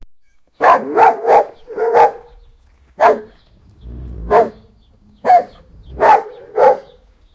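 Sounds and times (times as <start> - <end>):
big angry pit bull barking in gruff bursts: 0.6 - 2.4, 3.0 - 7.0
pit bull low growl: 3.4 - 6.9.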